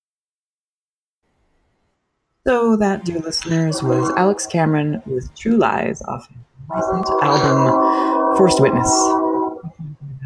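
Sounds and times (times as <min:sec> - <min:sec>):
speech: 0:02.4 - 0:09.2
train horn sounding a rich sustained chord: 0:03.4 - 0:04.8, 0:06.7 - 0:09.7.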